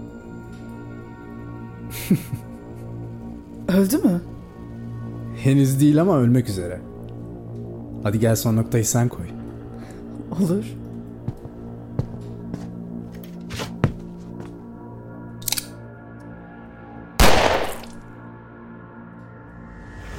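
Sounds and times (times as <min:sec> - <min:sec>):
speech: 0:02.0 - 0:02.5, 0:03.7 - 0:04.3, 0:05.4 - 0:06.9, 0:08.0 - 0:09.4, 0:10.4 - 0:10.8
heavier louder blast: 0:17.2 - 0:18.0
sharp gunshots: 0:17.2 - 0:18.0.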